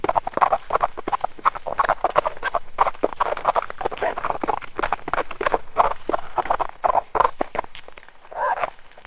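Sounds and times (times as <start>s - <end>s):
fast padded footsteps of wolf: 0.0s - 9.0s.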